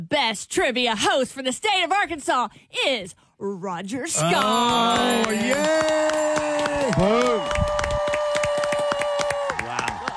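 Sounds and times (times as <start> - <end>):
speech: 0.1 - 7.8
crowd cheering and clapping: 4.2 - 10.1.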